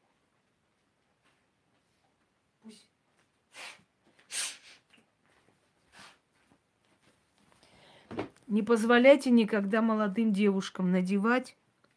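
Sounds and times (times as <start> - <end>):
speech: 2.6 - 2.9, 8.5 - 11.6
short breathy sniffs through the nose: 3.5 - 4.9, 5.9 - 6.2.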